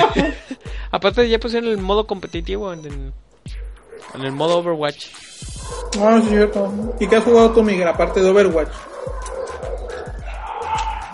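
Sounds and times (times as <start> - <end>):
laughter: 0.0 - 0.7
speech: 0.9 - 9.4
dogs fighting in a house: 3.4 - 4.6, 5.4 - 11.1.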